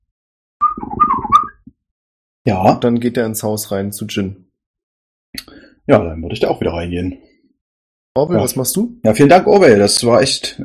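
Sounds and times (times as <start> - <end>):
small robot beeping in a warbling chirpy burst: 0.6 - 1.6
speech: 2.5 - 4.4, 5.3 - 7.3, 8.2 - 10.6.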